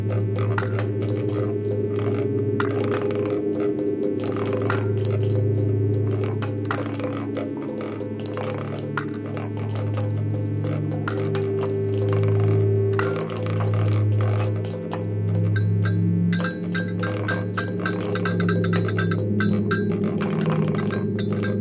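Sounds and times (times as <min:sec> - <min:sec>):
everyday items such as pots, pans, crockery, tins, boxes and plastic packaging: 0:00.0 - 0:21.6
evolving drone structure: 0:00.0 - 0:21.6.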